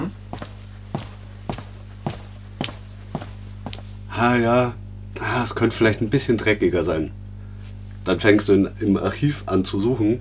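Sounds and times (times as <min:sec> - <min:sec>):
footsteps on a hard street surface: 0:00.0 - 0:04.1
constant low hum: 0:00.0 - 0:10.2
speech: 0:04.2 - 0:04.8, 0:05.4 - 0:07.2, 0:08.0 - 0:10.2.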